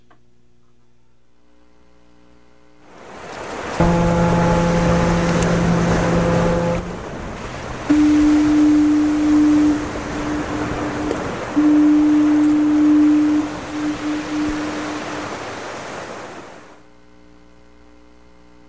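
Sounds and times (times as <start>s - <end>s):
ocean surf: 2.8s - 16.8s
wind: 2.8s - 16.9s
foghorn blowing near the ocean: 2.9s - 16.8s.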